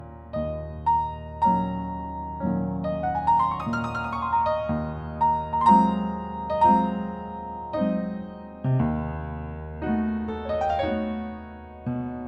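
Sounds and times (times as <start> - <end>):
calm piano music: 0.0 - 12.2.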